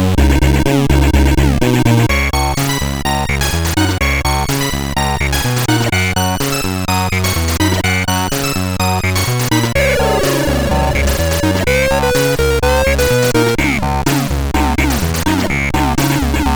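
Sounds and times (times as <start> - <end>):
chiptune intro music on SID CSG8580R5 chip: 0.2 - 16.5.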